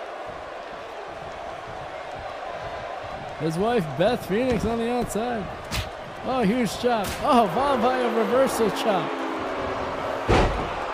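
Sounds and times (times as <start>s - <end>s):
steady arena noise: 0.0s - 10.9s
speech: 3.4s - 9.2s
wrestler's body crashing down hard onto the ring: 10.2s - 10.9s.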